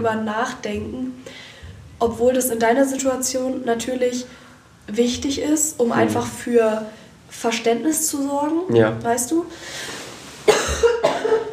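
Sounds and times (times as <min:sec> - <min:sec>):
speech: 0:00.0 - 0:10.0
person coughing: 0:06.0 - 0:06.2, 0:10.5 - 0:11.5.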